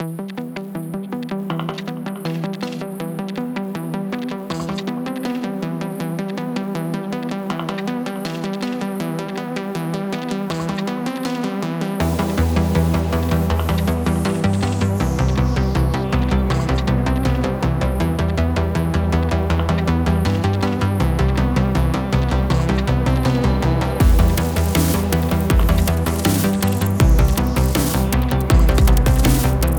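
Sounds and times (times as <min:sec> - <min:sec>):
space station music loop: 0:00.0 - 0:29.7.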